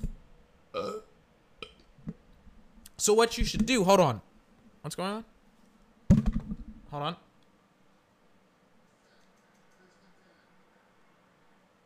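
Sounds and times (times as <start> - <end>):
burp: 0.7 - 1.8
speech: 3.0 - 5.3, 6.9 - 7.2.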